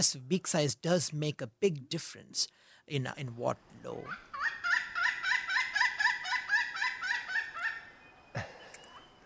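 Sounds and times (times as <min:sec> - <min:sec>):
speech: 0:00.0 - 0:04.6
pileated woodpecker laugh-like call: 0:04.3 - 0:09.0.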